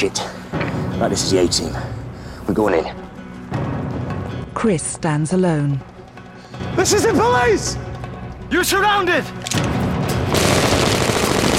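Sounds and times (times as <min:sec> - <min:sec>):
speech: 0:00.0 - 0:03.6, 0:04.6 - 0:05.9, 0:06.8 - 0:07.9, 0:08.5 - 0:09.7
machine gun fire in a shootout: 0:10.3 - 0:11.5.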